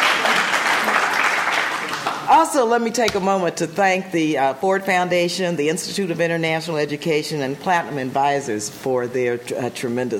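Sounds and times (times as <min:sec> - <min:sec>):
crowd of many hands clapping: 0:00.0 - 0:02.3
speech: 0:02.4 - 0:10.1.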